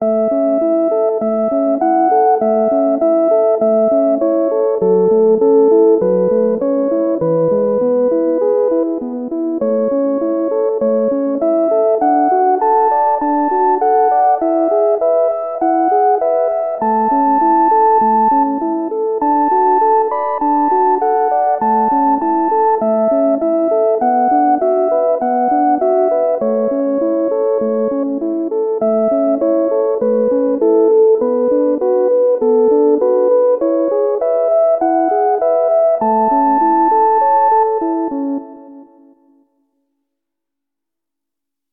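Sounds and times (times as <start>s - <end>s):
melody: 0.0s - 39.3s.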